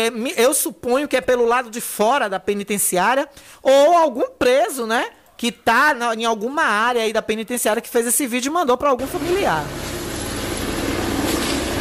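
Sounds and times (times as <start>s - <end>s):
speech: 0.0s - 10.0s
helicopter flying overhead with rotor thumping: 9.2s - 11.7s.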